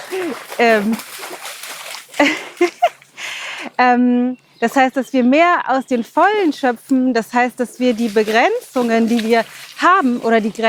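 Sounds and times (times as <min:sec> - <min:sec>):
dog jumping into water: 0:00.0 - 0:03.1, 0:08.0 - 0:10.3
speech: 0:00.1 - 0:01.3, 0:03.8 - 0:10.6.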